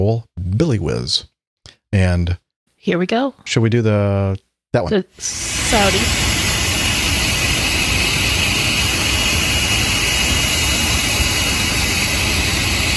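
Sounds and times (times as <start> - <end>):
speech: 0.0 - 1.3, 1.9 - 6.4
jet aircraft engine roaring: 5.2 - 12.9.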